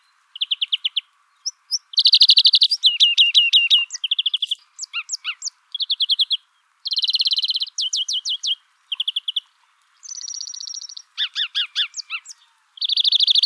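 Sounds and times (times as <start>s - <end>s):
European greenfinch Chloris chloris singing twittering phrases and wheezes: 0.0s - 13.4s.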